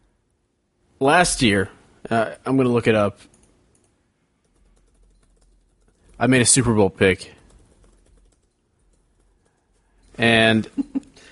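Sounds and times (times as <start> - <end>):
low steady hum: 0.0 - 11.3
speech: 1.0 - 3.3, 6.2 - 7.4, 10.2 - 11.0
fingers typing on a computer keyboard: 3.3 - 6.2, 7.4 - 10.2.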